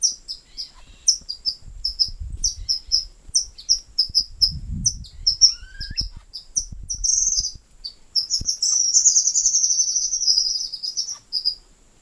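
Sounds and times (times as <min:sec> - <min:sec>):
White-throated kingbird giving twittering chatters and buzzy trill: 0:00.0 - 0:11.6.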